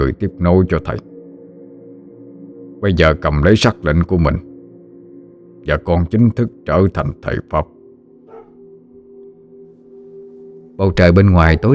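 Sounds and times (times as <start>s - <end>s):
speech: 0.0s - 1.1s, 2.8s - 4.5s, 5.6s - 7.8s, 10.8s - 11.7s
dog barking at night: 8.2s - 8.8s, 11.3s - 11.7s.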